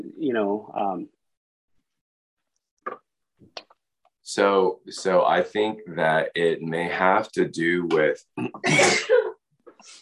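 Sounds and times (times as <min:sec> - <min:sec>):
speech: 0:00.0 - 0:01.2, 0:04.3 - 0:10.0
person sneezing: 0:08.6 - 0:09.3.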